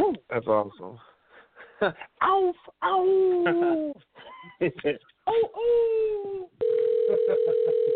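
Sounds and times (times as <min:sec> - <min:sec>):
speech: 0:00.4 - 0:01.2, 0:01.8 - 0:07.9
phone call electronic ringing tone: 0:06.6 - 0:07.9.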